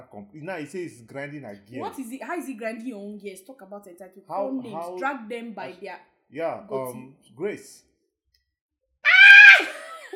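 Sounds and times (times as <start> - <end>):
speech: 0.0 - 7.9
person shouting in a strained high-pitched voice: 4.6 - 5.0, 9.1 - 9.8.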